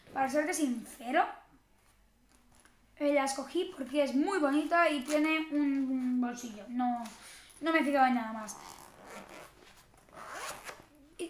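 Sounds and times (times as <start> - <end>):
speech: 0.2 - 1.4, 3.0 - 9.5
zipper of a 13-inch MacBook laptop sleeve being opened: 8.4 - 11.0.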